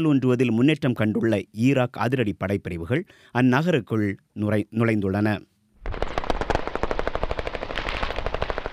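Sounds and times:
speech: 0:00.0 - 0:06.0
dense crackle behind the machine gun bursts: 0:05.8 - 0:08.7
sustained machine gun fire during fighting in Mosul: 0:05.8 - 0:08.7.

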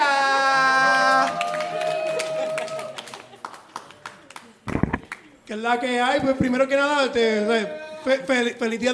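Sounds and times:
audience applause: 0:00.0 - 0:05.2
speech: 0:05.5 - 0:08.9.

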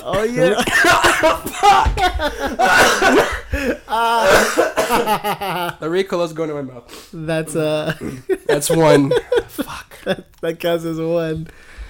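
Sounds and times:
laughter: 0:00.0 - 0:05.8, 0:07.6 - 0:10.3
speech: 0:00.0 - 0:11.8
person coughing: 0:00.1 - 0:05.2.

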